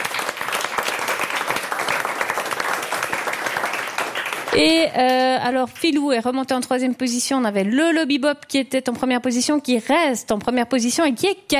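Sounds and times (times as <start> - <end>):
audience applauding for a correct answer: 0.0 - 4.8
speech: 4.6 - 11.5.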